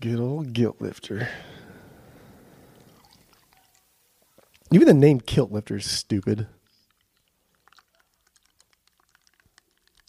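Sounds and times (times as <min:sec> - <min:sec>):
speech: 0:00.0 - 0:01.6, 0:04.7 - 0:06.6
drink poured from a can into a glass: 0:02.7 - 0:04.7, 0:06.2 - 0:10.0.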